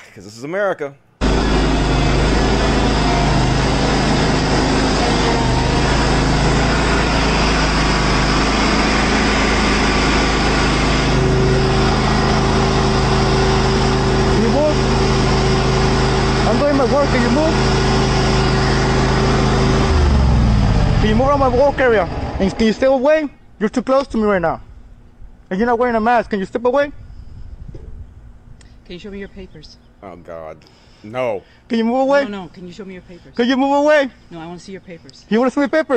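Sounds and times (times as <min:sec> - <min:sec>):
speech: 0:00.2 - 0:01.1, 0:17.0 - 0:17.8, 0:21.1 - 0:24.7, 0:25.5 - 0:27.0, 0:28.9 - 0:35.9
lawn mower engine droning as a man mows his lawn: 0:01.2 - 0:23.5.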